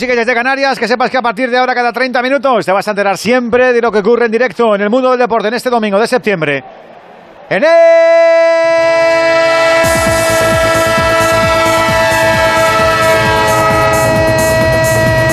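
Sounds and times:
speech: 0:00.0 - 0:06.9, 0:07.5 - 0:09.4
train horn blaring: 0:09.0 - 0:15.3.

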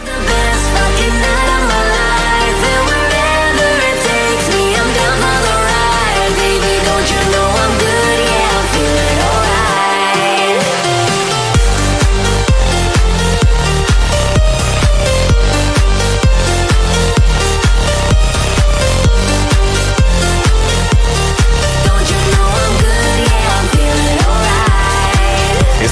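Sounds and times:
loud dance-pop remix with layered synths: 0:00.0 - 0:25.9
pounding four-on-the-floor beat: 0:10.6 - 0:25.9.

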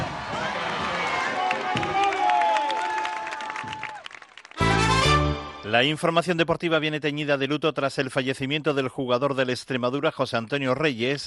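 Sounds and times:
large outdoor crowd at a military parade clapping: 0:00.2 - 0:05.4
speech: 0:05.7 - 0:11.2.

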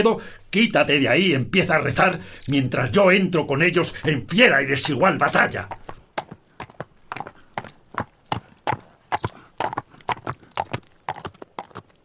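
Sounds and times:
speech: 0:00.0 - 0:05.8
horse hooves galloping: 0:03.6 - 0:12.0.

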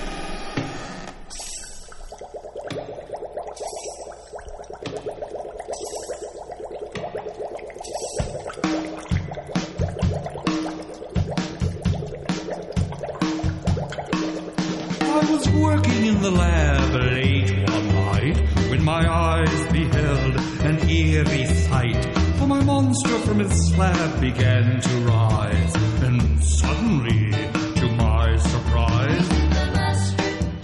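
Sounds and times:
bubbling and dripping sound effects: 0:01.2 - 0:29.4
band playing novelty Halloween dance song with bass and drums: 0:14.8 - 0:30.6
speech: 0:16.3 - 0:17.3, 0:22.9 - 0:25.2.

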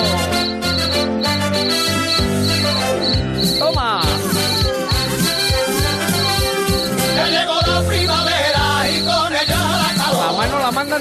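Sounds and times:
shrill rhythmic cricket chirp: 0:00.0 - 0:10.4
sevillanas song with guitar and vocals: 0:03.8 - 0:10.7.

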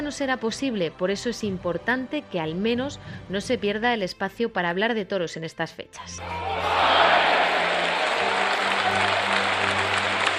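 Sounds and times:
speech: 0:00.1 - 0:07.0
large crowd applauding in an ovation: 0:06.2 - 0:10.3.

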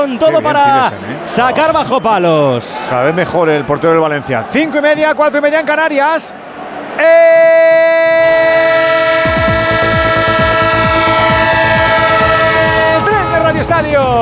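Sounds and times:
speech: 0:00.0 - 0:06.4, 0:07.0 - 0:08.5, 0:13.7 - 0:14.2
train horn holding a steady chord: 0:08.5 - 0:13.4.

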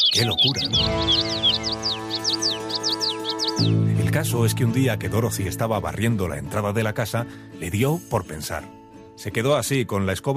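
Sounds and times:
many birds chirping: 0:00.0 - 0:06.6
speech: 0:00.1 - 0:02.9, 0:03.6 - 0:10.3.

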